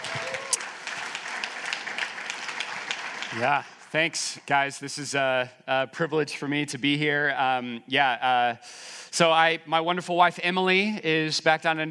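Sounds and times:
crowd applauding a speaker: 0:00.0 - 0:03.9
speech: 0:03.3 - 0:11.8.

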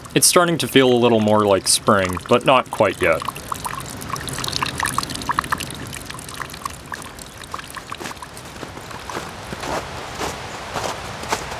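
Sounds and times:
speech: 0:00.2 - 0:03.4
boots crunching on packed snow: 0:08.1 - 0:11.5.

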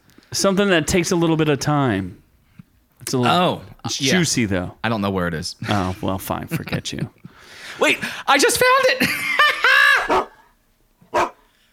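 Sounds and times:
speech: 0:00.3 - 0:02.2, 0:03.1 - 0:09.4
laughter: 0:05.6 - 0:07.2, 0:07.8 - 0:10.3
dog barking: 0:10.0 - 0:10.4, 0:11.1 - 0:11.5.

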